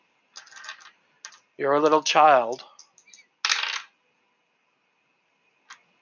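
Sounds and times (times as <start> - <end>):
dice rattling across a hard surface: 0.4 - 1.4, 2.5 - 3.9
speech: 1.6 - 2.7.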